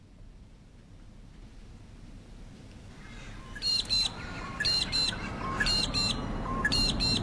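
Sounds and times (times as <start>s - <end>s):
steady low rumble: 0.0s - 7.2s
magpie lark calling loudly: 3.0s - 7.2s.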